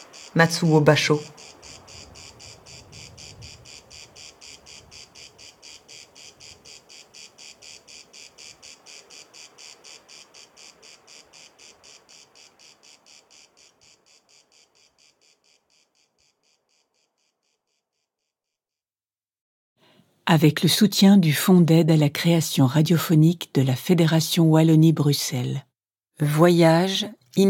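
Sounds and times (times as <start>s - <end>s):
cicada buzzing: 0.0s - 18.0s
speech: 0.3s - 1.4s, 20.4s - 27.4s.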